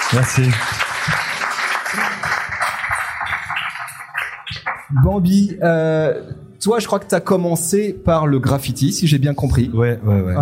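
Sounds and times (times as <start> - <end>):
crowd applause welcoming a guest: 0.0 - 4.9
speech: 0.1 - 1.3, 4.9 - 10.3.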